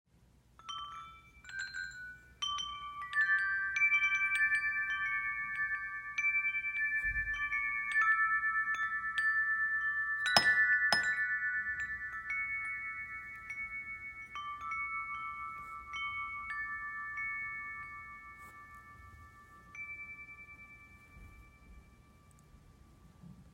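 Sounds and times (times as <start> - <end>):
wind chimes: 0.3 - 23.5.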